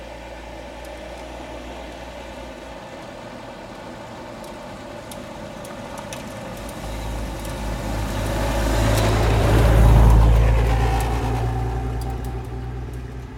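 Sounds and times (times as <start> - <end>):
approaching car passing by with road hiss: 6.2 - 13.3.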